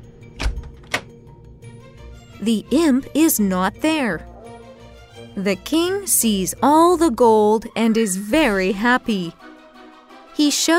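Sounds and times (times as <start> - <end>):
door knocking as it swings open: 0.4 - 1.1
door latch clunk: 0.4 - 1.2
speech: 2.4 - 4.3, 5.4 - 9.5, 10.4 - 10.7.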